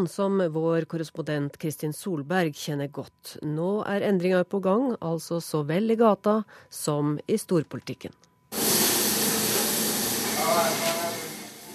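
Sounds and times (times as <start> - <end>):
speech: 0.0 - 8.3
thin hamburgers sizzling in a frying pan: 8.5 - 11.7.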